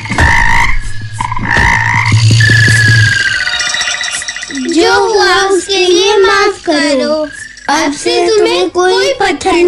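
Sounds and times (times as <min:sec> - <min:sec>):
frogs croaking in a chorus: 0:00.0 - 0:08.6
speech: 0:05.3 - 0:09.6.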